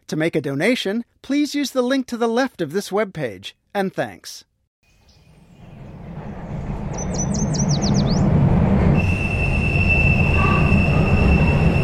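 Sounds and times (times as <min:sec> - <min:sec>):
speech: 0:00.1 - 0:04.5
subway train rumbling along the rails: 0:05.3 - 0:11.8
sustained whine: 0:08.2 - 0:11.8
high metallic subway wheel squeals: 0:08.9 - 0:11.8.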